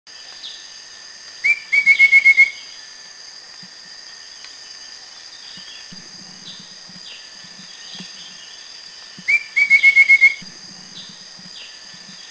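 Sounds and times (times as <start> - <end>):
Rufous-fronted Babbler calling: 1.5 - 2.6, 9.3 - 10.4.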